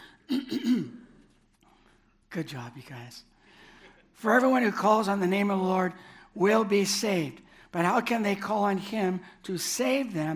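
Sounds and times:
single rough throat clearing: 0:00.3 - 0:01.1
speech: 0:02.4 - 0:03.3, 0:04.2 - 0:10.3.

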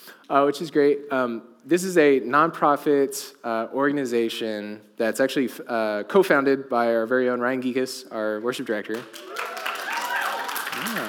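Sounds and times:
speech: 0:00.3 - 0:09.5
audience applauding: 0:09.0 - 0:11.0.

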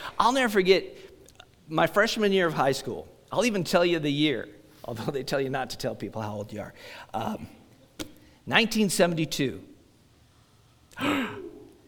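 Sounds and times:
speech: 0:00.2 - 0:01.0, 0:01.7 - 0:07.6, 0:08.5 - 0:09.7, 0:11.0 - 0:11.4
sharp breathy gasp: 0:11.0 - 0:11.7.

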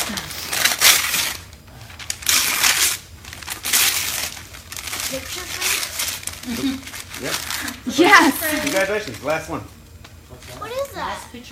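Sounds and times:
gift wrapping paper being torn open: 0:00.0 - 0:09.6
speech: 0:00.1 - 0:00.4, 0:06.4 - 0:09.8, 0:11.0 - 0:11.5.

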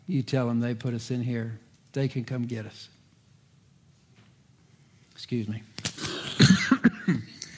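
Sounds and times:
speech: 0:00.1 - 0:03.0, 0:05.2 - 0:05.8, 0:06.4 - 0:07.4
person coughing: 0:06.0 - 0:07.5.

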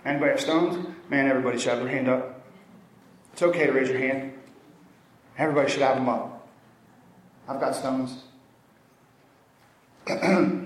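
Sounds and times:
speech: 0:00.0 - 0:02.4, 0:03.4 - 0:04.4, 0:05.4 - 0:06.3, 0:07.5 - 0:08.3, 0:10.1 - 0:10.6
throat clearing cough: 0:10.0 - 0:10.6.

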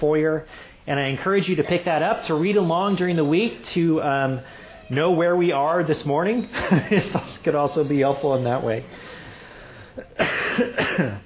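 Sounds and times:
speech: 0:00.0 - 0:09.2, 0:10.0 - 0:11.2
laughter: 0:05.6 - 0:09.4
harsh raspy coughs: 0:09.9 - 0:11.2.

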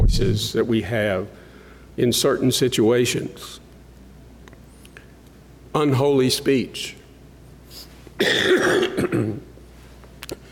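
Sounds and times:
speech: 0:00.1 - 0:01.4, 0:02.0 - 0:03.6, 0:05.8 - 0:07.0, 0:08.2 - 0:09.5
person coughing: 0:08.2 - 0:09.5.

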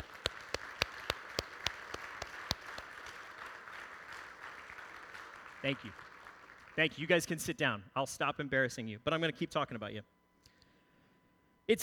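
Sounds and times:
audience clapping: 0:00.0 - 0:06.8
speech: 0:05.6 - 0:06.1, 0:06.8 - 0:10.1, 0:11.7 - 0:11.8.

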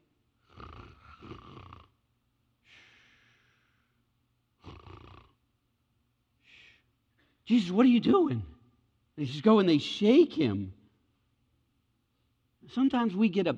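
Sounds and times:
voice imitating heavy sleep breathing and snoring of a sleeping man: 0:00.4 - 0:01.9, 0:04.6 - 0:05.4
speech: 0:07.5 - 0:08.5, 0:09.2 - 0:10.8, 0:12.7 - 0:13.5.

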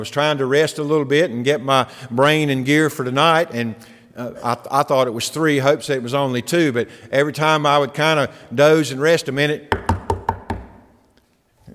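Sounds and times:
speech: 0:00.0 - 0:09.9
knuckles rapping on a door: 0:09.7 - 0:10.8.

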